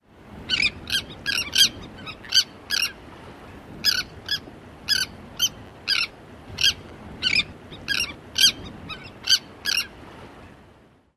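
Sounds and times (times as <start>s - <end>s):
sandwich tern typical calls: 0.5s - 3.0s, 3.8s - 10.0s.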